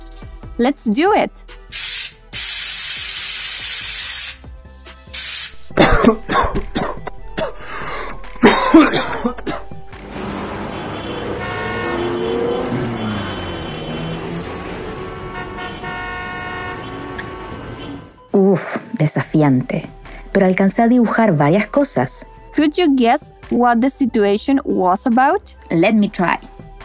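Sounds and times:
speech: 0.6 - 1.6, 6.1 - 6.6, 19.2 - 26.5
aerosol spray can being sprayed: 1.7 - 4.5, 5.1 - 5.7
city traffic engines rumbling and passing: 5.6 - 18.4
person coughing and clearing their throat: 5.7 - 9.8
car horns honking in city traffic: 8.4 - 18.2.

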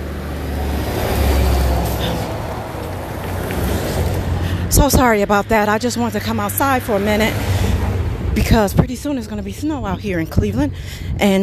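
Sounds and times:
broadband road noise: 0.0 - 11.4
heavy vehicle engine drone passing outdoors: 0.0 - 11.4
speech: 4.8 - 7.6, 8.4 - 11.4.

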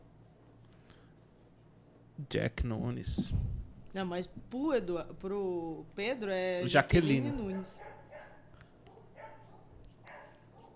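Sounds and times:
steady low hum: 0.0 - 10.7
speech: 2.2 - 7.9
dog barking: 7.1 - 10.7.

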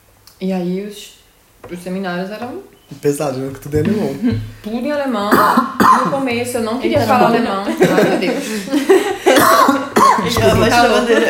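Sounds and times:
speech: 0.4 - 9.2, 10.3 - 11.2
person coughing after choking on saliva: 5.3 - 6.2, 9.2 - 10.4
laughter: 6.9 - 11.2.

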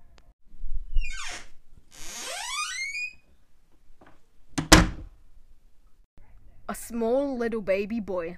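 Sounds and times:
large wooden door creaking open in a wooden cabin: 1.0 - 3.3, 4.0 - 5.1
speech: 6.7 - 8.3.

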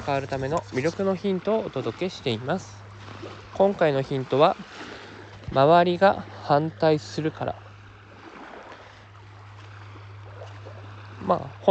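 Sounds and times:
speech: 0.0 - 4.9, 5.5 - 7.6, 11.2 - 11.6
low rumbling hum: 0.0 - 11.6
ocean waves washing against the shore: 0.0 - 11.6.

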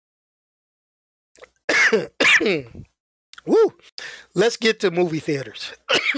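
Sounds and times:
throat clearing: 1.7 - 2.8
speech: 1.9 - 6.1.

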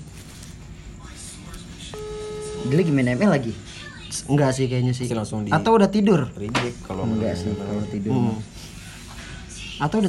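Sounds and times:
electronic phone ringing tone during outgoing call: 1.9 - 3.4, 6.9 - 8.4
speech: 2.6 - 8.6, 9.8 - 10.0.

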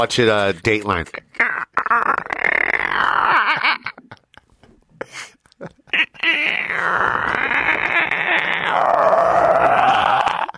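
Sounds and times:
speech: 0.0 - 1.5
voice mimicking stomach rumbling after eating cereal: 1.0 - 4.1, 5.7 - 10.5.

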